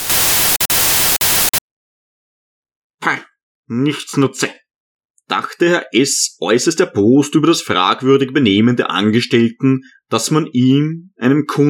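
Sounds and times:
loud hissing static from a suspicious device in a supermarket: 0.0s - 1.6s
speech: 3.7s - 4.6s, 5.3s - 11.6s.

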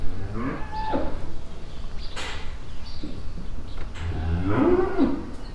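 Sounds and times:
cow mooing in a stall: 0.1s - 1.3s, 4.0s - 5.4s.

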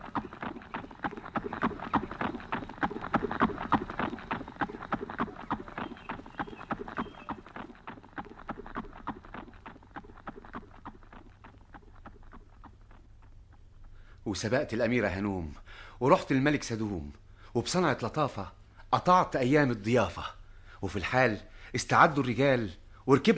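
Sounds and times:
horse hooves galloping: 0.0s - 15.2s
speech: 14.3s - 23.3s.

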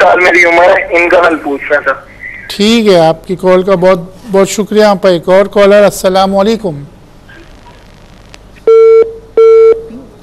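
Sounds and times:
speech: 0.0s - 7.0s
hiss: 0.0s - 10.2s
phone call disconnecting beeps: 8.7s - 9.9s.

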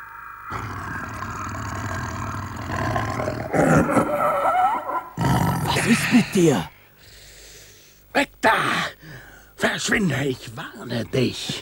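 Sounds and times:
leopard caught in a foothold trap roaring: 0.5s - 6.0s
speech: 5.9s - 6.7s, 9.7s - 11.5s.

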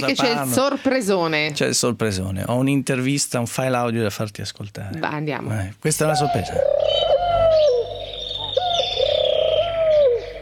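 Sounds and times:
speech: 0.0s - 7.2s
turtle doves cooing: 6.0s - 10.4s.

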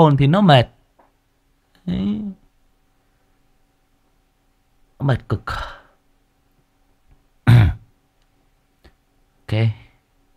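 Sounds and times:
speech: 0.0s - 0.8s, 1.8s - 2.4s, 5.0s - 5.8s, 9.5s - 9.8s
cough: 7.4s - 7.9s.

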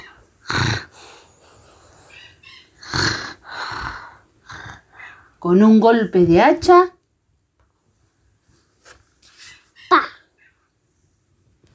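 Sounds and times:
huge wolf with a swollen belly snoring: 0.4s - 1.2s, 2.8s - 4.9s
speech: 5.4s - 7.0s.

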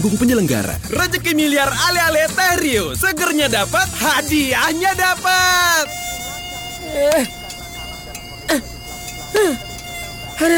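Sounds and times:
speech: 0.0s - 6.1s, 6.9s - 7.4s, 8.5s - 8.7s, 9.4s - 9.7s, 10.4s - 10.5s
mosquito whine: 5.6s - 10.5s.

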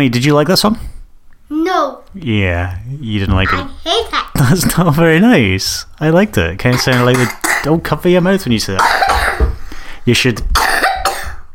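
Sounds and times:
speech: 0.0s - 0.9s, 1.8s - 10.6s
loud harsh raspy cough: 6.7s - 7.8s, 8.8s - 9.6s, 10.6s - 11.5s.

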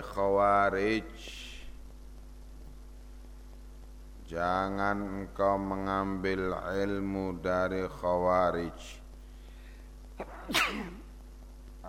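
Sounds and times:
steady low hum: 0.0s - 11.8s
speech: 0.1s - 1.5s, 4.3s - 9.0s, 10.2s - 11.0s
person sneezing: 10.2s - 11.1s.

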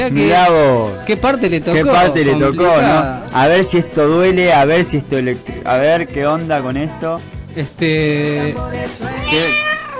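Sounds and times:
speech: 0.0s - 9.7s
electronic toy cat meowing: 9.2s - 9.9s.

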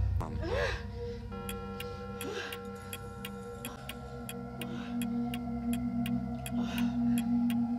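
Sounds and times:
sustained low tonal drone: 0.0s - 7.7s
breathy sounds: 0.4s - 7.7s
clock ticking in a room: 1.4s - 6.6s.

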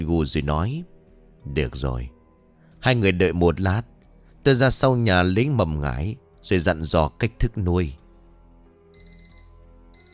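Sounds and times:
speech: 0.0s - 2.2s, 2.8s - 8.0s
mobile phone alarm clock ringing with rapid high-pitched electronic beeping: 8.9s - 10.1s.

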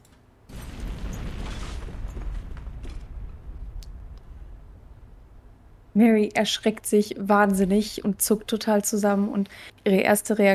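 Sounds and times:
explosion with the building shaking: 0.5s - 6.0s
speech: 6.0s - 10.5s.

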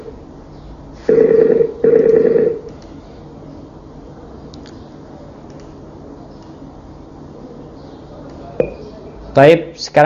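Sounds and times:
telephone tones as a call is dialed: 1.1s - 2.6s
soft clicks: 4.5s - 4.8s, 5.5s - 5.8s
speech: 9.4s - 10.0s.

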